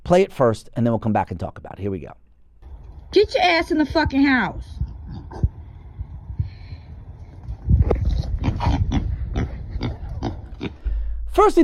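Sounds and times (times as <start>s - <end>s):
speech: 0.1s - 2.2s, 3.1s - 4.8s, 11.4s - 11.6s
pet pig grunting, squealing and snorting in a video: 4.8s - 5.8s, 7.8s - 10.9s.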